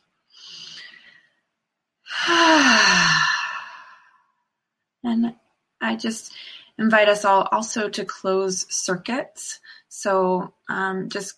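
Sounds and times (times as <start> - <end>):
deep breath: 0.4 - 1.4, 2.1 - 4.2
breathy exhale turning into a voiced sigh: 2.1 - 4.2
speech: 5.1 - 11.3.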